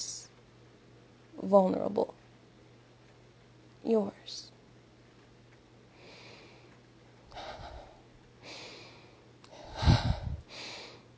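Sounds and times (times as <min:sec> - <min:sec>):
speech: 0:01.4 - 0:02.2, 0:03.8 - 0:04.5
person breathing heavily: 0:05.9 - 0:06.7, 0:07.3 - 0:11.1.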